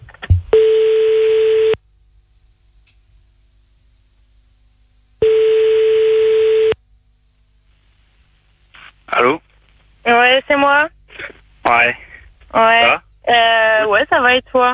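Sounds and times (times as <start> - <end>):
telephone ringback tone while a call is placed: 0.5 - 1.8, 5.2 - 6.8
speech: 10.3 - 11.0, 11.7 - 14.7.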